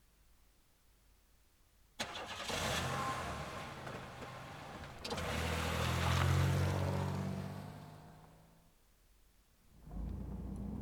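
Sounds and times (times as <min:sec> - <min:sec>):
car engine cranking, starting and driving off: 0:02.0 - 0:08.6, 0:09.8 - 0:10.7.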